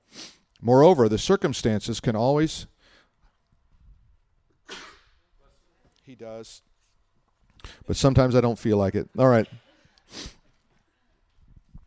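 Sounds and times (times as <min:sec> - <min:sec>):
speech: 0:00.6 - 0:02.7, 0:06.1 - 0:06.7, 0:07.6 - 0:10.4
shuffling breaths: 0:02.8 - 0:04.2, 0:06.6 - 0:07.9, 0:09.6 - 0:11.8
person sneezing: 0:04.6 - 0:05.2, 0:10.1 - 0:10.4.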